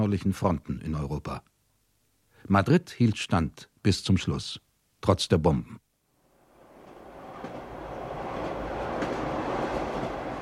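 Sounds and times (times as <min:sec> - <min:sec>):
speech: 0:00.1 - 0:01.5, 0:02.4 - 0:05.8
train rumbling along the rails through La Mancha: 0:06.4 - 0:10.4.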